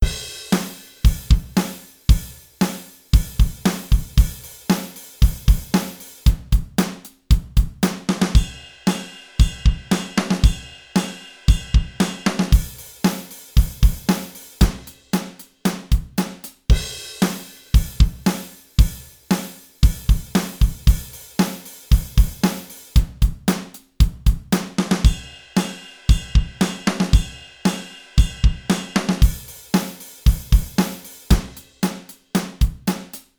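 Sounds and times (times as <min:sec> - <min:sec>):
dry drums: 0:00.0 - 0:33.3.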